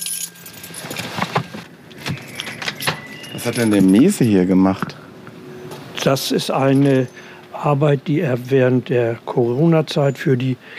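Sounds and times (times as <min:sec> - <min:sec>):
metal keys jingling and clinking: 0:00.0 - 0:04.4, 0:06.6 - 0:07.0
speech: 0:03.4 - 0:05.0, 0:06.0 - 0:10.7.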